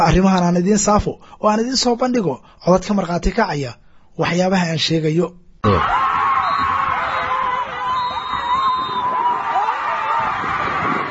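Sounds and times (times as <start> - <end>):
speech: 0.1 - 6.1
stadium crowd in Cadaado Galgaduud region shouting and screaming: 5.6 - 11.0.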